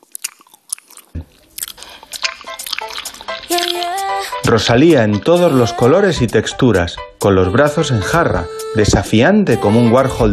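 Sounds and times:
woman chewing gum with wet smacks and clicks: 0:00.0 - 0:04.4
speech: 0:03.7 - 0:10.3.

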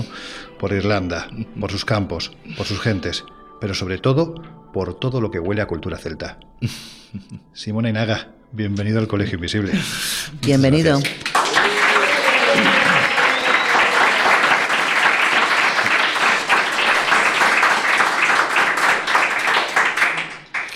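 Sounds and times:
speech: 0:00.6 - 0:11.2
audience applause: 0:11.0 - 0:20.7
voices cheering: 0:11.3 - 0:19.5
laughter: 0:11.5 - 0:17.6.

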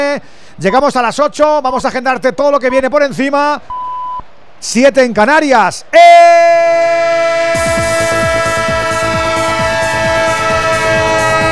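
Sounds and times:
speech: 0:00.2 - 0:03.8, 0:04.6 - 0:06.9
sound-effect train horn multi-toned blast: 0:07.0 - 0:11.5.

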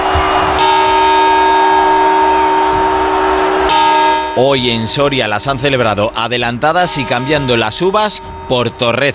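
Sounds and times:
large clock bell striking New Year's Eve chimes in Soria: 0:00.5 - 0:09.1
speech: 0:04.4 - 0:09.1.

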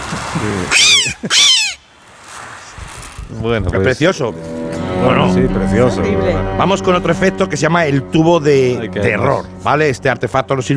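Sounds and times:
speech: 0:00.4 - 0:01.8, 0:03.3 - 0:10.7
seagull imitation with a bamboo-and-balloon mouthpiece: 0:00.7 - 0:01.8.

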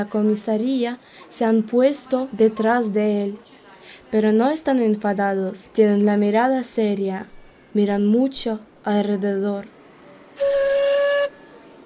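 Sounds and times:
speech: 0:00.0 - 0:09.8
train whistle as train starts moving: 0:10.4 - 0:11.8.

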